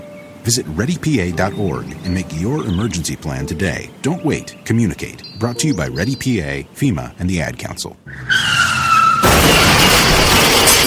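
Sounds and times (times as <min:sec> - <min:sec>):
speech: 0:00.4 - 0:08.5
car tire screech: 0:08.1 - 0:09.9
glass shattering: 0:09.2 - 0:10.8
violent car crash with crunching metal: 0:09.2 - 0:10.8.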